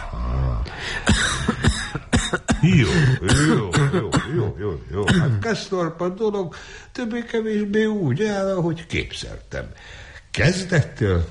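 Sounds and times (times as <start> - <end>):
person coughing forcefully with throaty rasping: 1.0 - 5.4
speech: 2.6 - 11.3.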